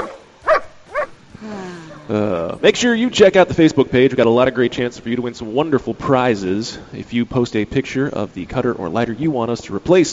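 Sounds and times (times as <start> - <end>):
dog barking: 0.0 - 1.2
speech: 1.4 - 10.1.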